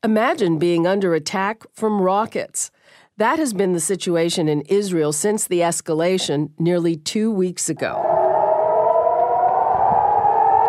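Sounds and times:
speech: 0.0 - 8.3
loud air raid siren wailing: 7.9 - 10.6.

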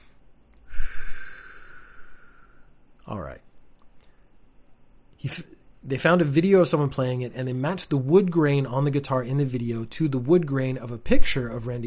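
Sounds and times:
deep breath drawn in sharply into the microphone: 0.0 - 2.8
speech: 3.1 - 3.5, 5.2 - 11.8.

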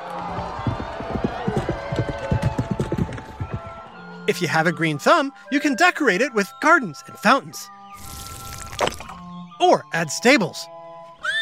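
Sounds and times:
hoofbeats of galloping horses at a joust: 0.0 - 4.0
speech: 4.3 - 7.8, 9.6 - 10.7.

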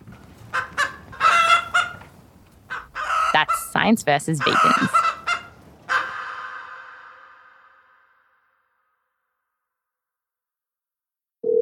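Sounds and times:
chicken squawk: 0.5 - 2.1, 2.7 - 8.0
chickens clucking: 0.5 - 7.3
speech: 3.4 - 5.1.

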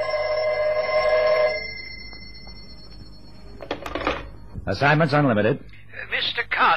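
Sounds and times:
telephone bell ringing in an office: 0.0 - 4.4
speech: 4.7 - 6.7.

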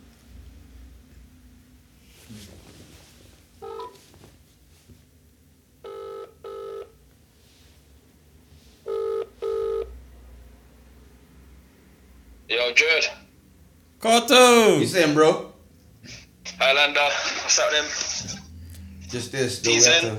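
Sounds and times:
low hum: 0.0 - 20.1
phone ringback tone: 3.6 - 4.0, 5.8 - 6.8, 8.9 - 9.9
speech: 12.5 - 13.2, 14.0 - 18.0, 19.1 - 20.1.

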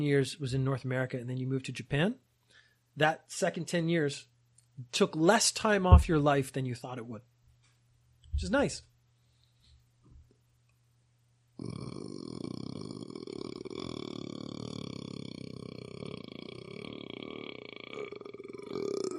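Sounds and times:
speech: 0.0 - 2.3, 3.0 - 7.3, 8.4 - 8.9
long loud burp: 11.6 - 19.1.

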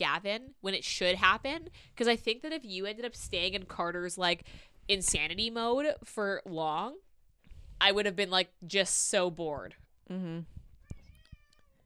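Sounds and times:
speech: 0.0 - 7.0, 7.8 - 10.6
cat giving a drawn-out wavering meow: 10.8 - 11.8.

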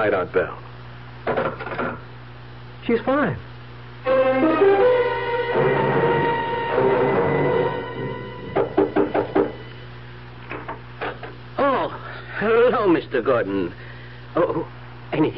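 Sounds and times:
speech: 0.0 - 1.6, 2.9 - 4.8, 12.4 - 15.3
music: 4.0 - 9.9
sharp knocks on a door: 8.6 - 9.6.

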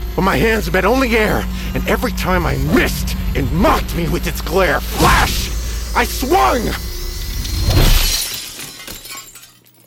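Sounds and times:
speech: 0.2 - 6.9
mirror glass shattering with tinkling shards scattering: 7.3 - 9.8.

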